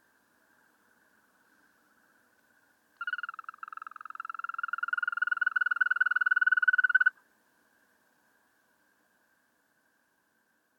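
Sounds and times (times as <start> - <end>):
European green toad long even trill: 3.0 - 7.2.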